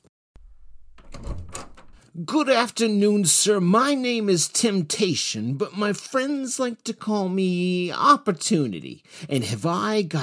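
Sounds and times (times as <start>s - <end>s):
door opening: 0.4s - 2.0s
speech: 2.2s - 10.2s.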